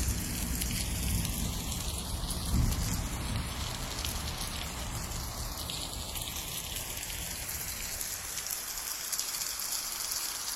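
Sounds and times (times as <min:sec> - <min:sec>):
low thunder rumble: 0:00.0 - 0:07.7
steady dense rain pattering on surfaces: 0:00.0 - 0:10.5.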